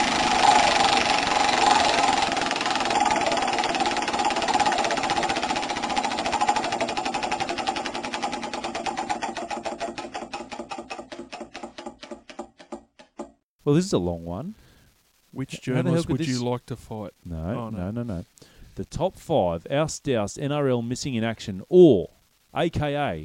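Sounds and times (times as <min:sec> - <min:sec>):
graffitied chocolate wheel pointer ticking as the wheel spins: 0:00.0 - 0:12.7
speech: 0:13.7 - 0:14.6, 0:15.4 - 0:23.2.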